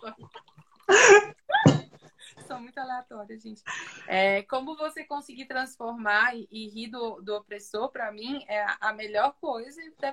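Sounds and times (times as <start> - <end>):
water pouring into a glass: 0.0 - 1.1
speech: 2.9 - 10.1.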